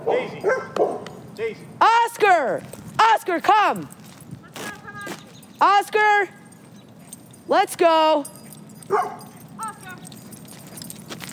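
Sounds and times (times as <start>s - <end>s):
dog barking: 0.0s - 1.3s, 8.8s - 10.0s
speech: 2.2s - 4.0s, 5.6s - 6.4s, 7.5s - 9.2s.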